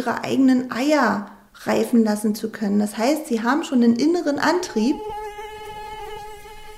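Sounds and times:
speech: 0.0s - 5.3s
mosquito buzzing in flight: 4.7s - 6.7s.

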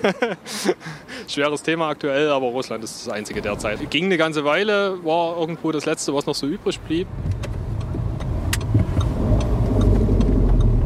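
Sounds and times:
laughter: 0.0s - 1.0s
speech: 0.0s - 7.5s
car road noise: 0.0s - 10.8s
car engine rumble while driving toward a stadium: 3.1s - 4.0s, 6.1s - 10.8s.

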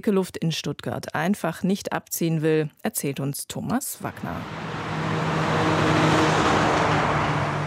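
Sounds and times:
speech: 0.0s - 4.8s
road traffic with cars passing: 4.0s - 7.6s
low hum: 4.2s - 7.6s.

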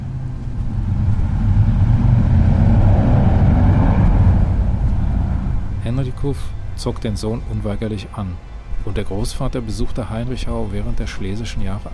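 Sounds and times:
very loud motorcycle engine roaring past: 0.0s - 6.8s
speech: 6.2s - 11.9s.

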